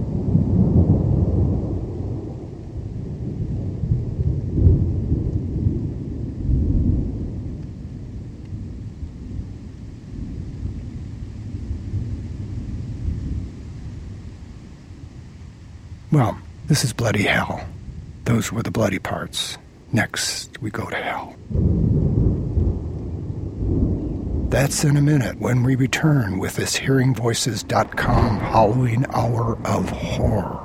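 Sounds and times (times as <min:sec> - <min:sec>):
deep rolling thunder: 0:00.0 - 0:18.5, 0:20.8 - 0:30.6
steady rain: 0:00.0 - 0:30.6
speech: 0:16.2 - 0:22.2, 0:24.5 - 0:30.6.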